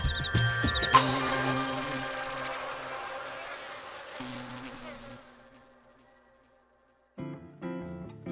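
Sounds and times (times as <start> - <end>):
tonal sound: 0.0 - 4.7
blue bottle fly buzzing: 0.0 - 6.8.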